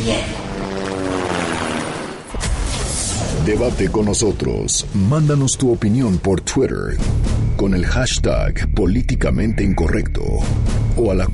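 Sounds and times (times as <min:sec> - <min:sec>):
speech: 0:00.0 - 0:01.0, 0:03.4 - 0:11.3
helicopter flying: 0:00.0 - 0:03.5.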